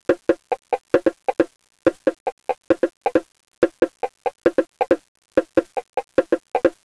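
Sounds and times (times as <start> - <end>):
bongos: 0.1 - 6.8.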